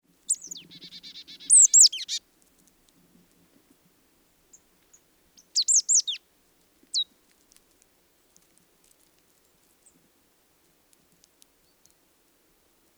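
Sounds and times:
marsh tit Poecile palustris calling: 0.3s - 2.2s, 5.4s - 6.2s.

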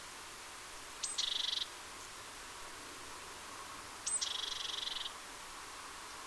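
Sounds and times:
soft hiss: 0.0s - 6.2s
Parus major great tit calling with a high note and harsh buzzing churr: 1.0s - 1.7s, 4.0s - 5.1s.

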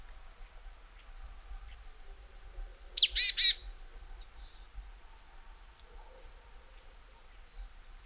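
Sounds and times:
Poecile palustris marsh tit calling: 3.0s - 3.6s.

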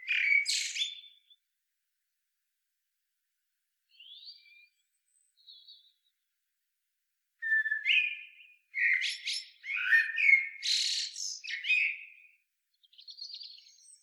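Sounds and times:
Common blackbird Turdus merula fluting and twittering: 0.0s - 1.3s, 7.4s - 12.2s, 13.0s - 14.0s.

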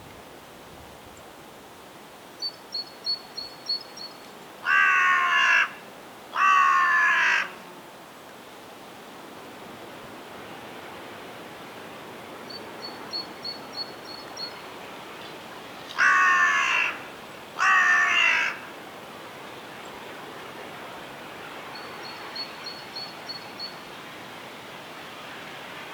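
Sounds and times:
carrion crow Corvus corone cawing: 4.6s - 5.8s, 6.4s - 7.6s, 16.0s - 18.7s.

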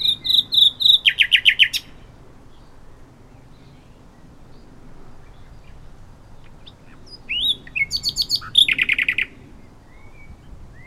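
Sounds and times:
common nightingale Luscinia megarhynchos singing: 0.0s - 10.8s.

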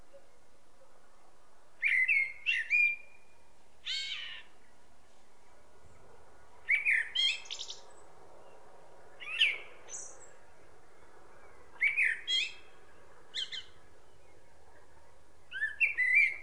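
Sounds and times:
Turdus merula common blackbird song: 0.0s - 16.4s
faint background hiss: 0.0s - 16.4s.

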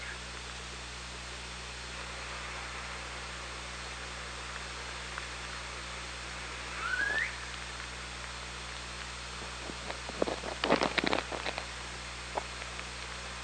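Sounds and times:
constant underwater hiss and hum on hydrophone: 0.0s - 13.4s
killer whale upward-sweeping whistled call: 6.7s - 7.5s.

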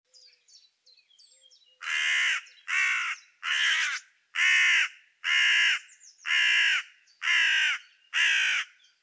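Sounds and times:
carrion crow Corvus corone cawing: 1.8s - 9.0s.

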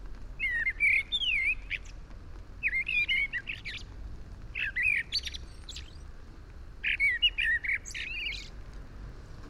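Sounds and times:
Eurasian blackbird Turdus merula song with scratchy high notes: 0.4s - 6.2s, 6.8s - 8.6s.

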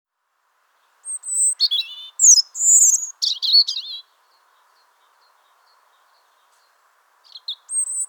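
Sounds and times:
European robin Erithacus rubecula singing: 0.7s - 8.0s.

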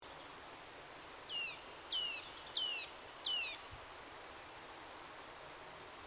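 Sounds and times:
steady background hiss: 0.0s - 6.0s
Eurasian nuthatch Sitta europaea calls: 1.3s - 3.6s.

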